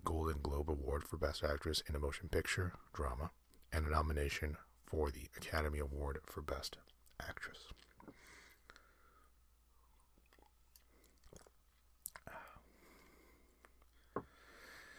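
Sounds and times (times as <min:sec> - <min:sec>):
speech: 0:00.0 - 0:08.4
person sipping tea: 0:07.7 - 0:14.5
mouth clicks: 0:09.8 - 0:12.6
swallowing: 0:09.8 - 0:12.6.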